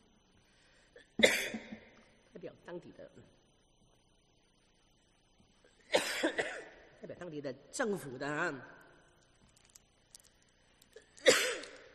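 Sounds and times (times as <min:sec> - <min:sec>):
man coughing harshly: 0:01.0 - 0:01.9, 0:05.9 - 0:06.8, 0:11.2 - 0:11.9
speech: 0:02.4 - 0:03.4, 0:07.1 - 0:08.8.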